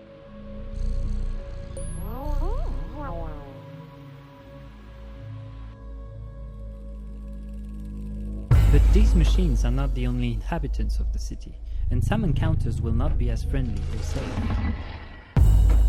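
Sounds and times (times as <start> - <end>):
cat purring: 0.3 - 4.5, 6.3 - 11.0
speech: 8.8 - 15.0.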